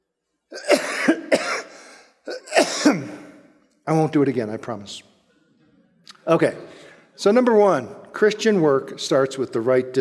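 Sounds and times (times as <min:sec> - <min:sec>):
person coughing from a tickle in the throat: 0:00.5 - 0:03.4
speech: 0:03.9 - 0:05.1, 0:06.3 - 0:09.9.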